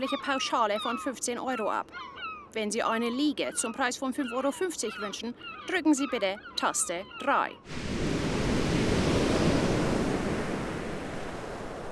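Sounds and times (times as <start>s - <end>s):
speech: 0.0s - 8.1s
sea waves breaking on a beach: 7.7s - 11.9s.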